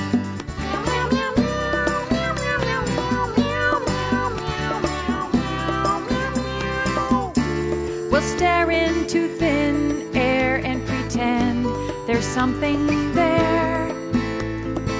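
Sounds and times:
busy musical backing with a driving beat: 0.0s - 14.9s
cat meowing: 1.4s - 7.4s
speech: 12.4s - 13.1s.

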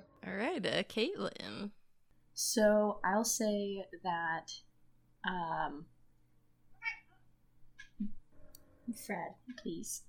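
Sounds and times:
speech: 0.3s - 1.8s, 2.4s - 5.9s, 8.9s - 10.0s
cat meowing: 6.8s - 7.2s.

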